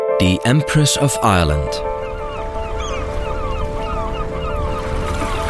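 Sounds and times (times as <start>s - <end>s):
speech: 0.2s - 1.9s
low rumble of wind and water in the harbor of Quebec City: 1.7s - 5.4s
seagulls screeching in a harbor: 1.8s - 5.4s.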